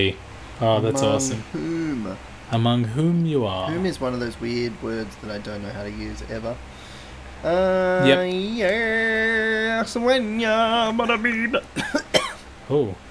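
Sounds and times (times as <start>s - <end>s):
speech: 0.0s - 6.8s, 7.4s - 12.0s, 12.7s - 13.0s
person singing a long wavering note: 0.9s - 2.1s, 7.8s - 9.4s
person coughing: 11.6s - 12.4s.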